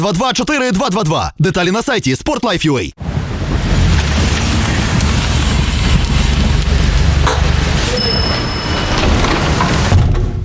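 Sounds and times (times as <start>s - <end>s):
speech: 0.0s - 3.6s
heavy rain pouring: 3.0s - 10.0s.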